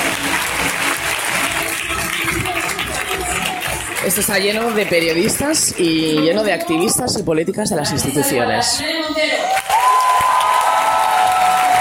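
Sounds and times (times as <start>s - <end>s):
theatre audience applauding in an ovation at a women's day event in Madrid: 0.0s - 6.1s, 9.5s - 11.7s
speech: 4.0s - 9.6s.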